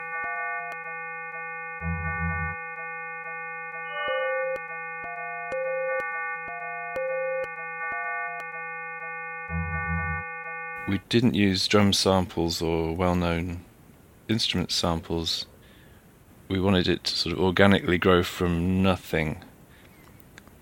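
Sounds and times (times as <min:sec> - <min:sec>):
layered steady pure sine tones from additive synth code humming: 0:00.0 - 0:11.0
short synthesized beeping notes stepping up and down: 0:00.0 - 0:11.0
brief low buzzing bursts: 0:00.0 - 0:11.1
speech: 0:10.9 - 0:13.7, 0:14.3 - 0:15.5, 0:16.5 - 0:19.5.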